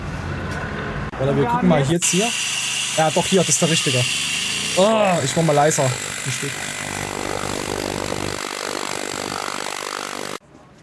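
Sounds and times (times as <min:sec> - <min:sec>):
speech: 0:01.2 - 0:06.7
angle grinder grinding asphalt during removal: 0:02.0 - 0:10.4.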